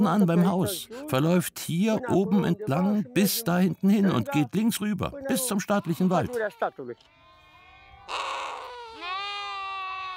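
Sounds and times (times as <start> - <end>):
speech: 0.0 - 7.2
lambs bleating in a stable: 5.3 - 10.1.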